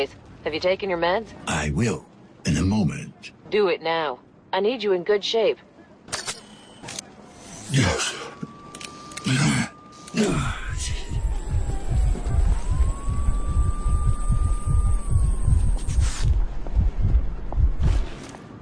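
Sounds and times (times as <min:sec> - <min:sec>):
speech: 0:00.0 - 0:05.7, 0:07.7 - 0:08.5, 0:09.3 - 0:11.0
noisy bursts: 0:06.5 - 0:18.2
alarm siren wailing during building lockdown: 0:07.4 - 0:17.9
heavy throbbing pulse: 0:10.1 - 0:18.2.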